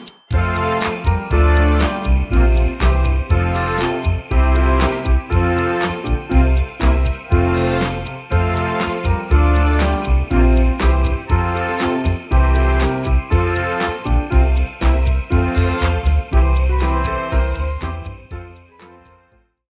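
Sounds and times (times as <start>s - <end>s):
piano music at tempo 120: 0.3s - 19.4s.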